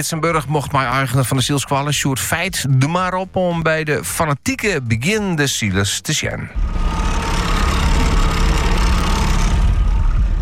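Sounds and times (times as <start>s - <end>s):
speech: 0.0s - 7.0s
motorboat engine droning: 6.6s - 10.3s.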